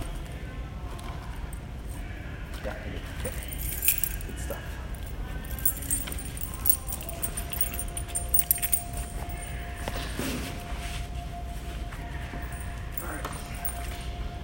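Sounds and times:
steady hum: 0.0s - 14.4s
keys jingling and rattling: 3.3s - 10.1s, 12.3s - 14.0s.

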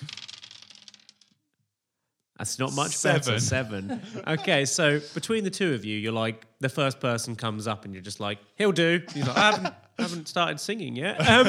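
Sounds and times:
dice rolling: 0.0s - 1.4s
speech: 2.4s - 11.4s
laughter: 2.7s - 5.2s, 9.0s - 10.3s, 11.1s - 11.4s.

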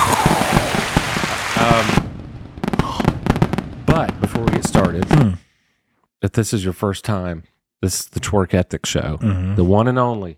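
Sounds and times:
fireworks crackling and popping: 0.0s - 5.2s
speech: 4.0s - 5.4s, 6.2s - 10.3s.

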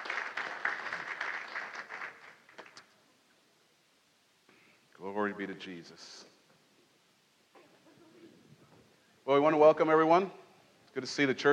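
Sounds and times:
crowd applauding: 0.0s - 2.9s
speech: 5.3s - 6.3s, 9.4s - 10.4s, 11.0s - 11.5s.

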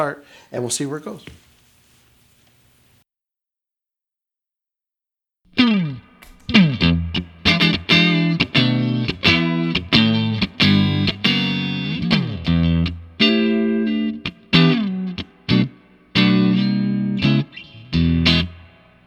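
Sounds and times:
speech: 0.0s - 1.5s
overdriven electric guitar playing a riff without vibe pedal: 5.5s - 19.0s.

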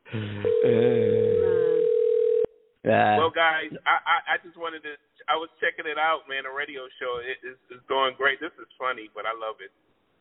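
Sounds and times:
speech: 0.1s - 1.2s, 2.8s - 9.8s
telephone ringing tone of an unanswered call: 0.4s - 2.5s.

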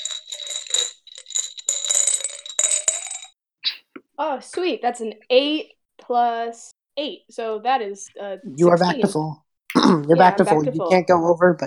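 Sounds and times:
dice rattling in a small container: 0.0s - 3.3s
speech: 4.2s - 11.6s.

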